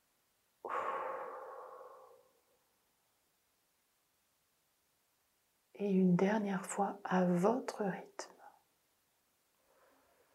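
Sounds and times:
long breath blown out during a sophrology relaxation session: 0.6 - 2.4
speech: 5.8 - 8.4.

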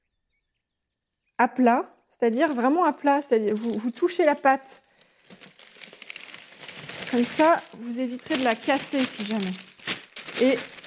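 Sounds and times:
speech: 1.4 - 5.4, 7.1 - 9.7, 10.4 - 10.8
parchment paper being slowly peeled away from dough: 2.4 - 10.8.

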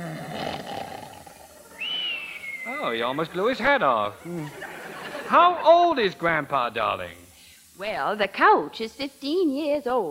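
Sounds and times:
elderly man snoring asleep on a couch: 0.0 - 1.6, 4.2 - 4.6
speech: 2.8 - 4.7, 5.3 - 7.2, 7.8 - 10.0
laughter: 2.8 - 6.1.

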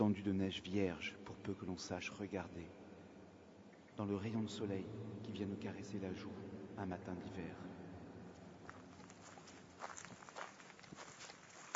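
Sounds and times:
speech: 0.0 - 2.8, 4.0 - 7.8
low constant hiss: 0.0 - 11.7
footsteps crunching on a forest path in winter: 8.4 - 11.7.

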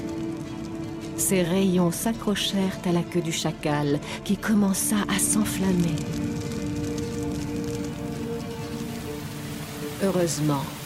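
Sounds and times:
low sustained tonal hum: 0.0 - 10.8
steady rain with dense even patter of drops: 0.0 - 10.8
speech: 1.2 - 6.5, 10.0 - 10.8.

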